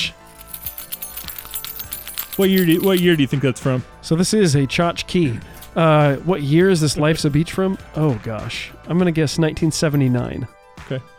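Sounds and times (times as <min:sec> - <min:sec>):
keys on a keychain tossed and jingling: 0:00.0 - 0:11.1
speech: 0:02.4 - 0:11.1.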